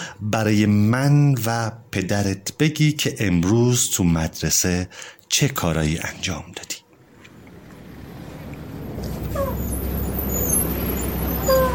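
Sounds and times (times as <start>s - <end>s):
speech: 0.2s - 6.8s
bus engine idling with low rumble: 7.4s - 11.7s
bus air brakes squealing and hissing: 7.8s - 11.7s.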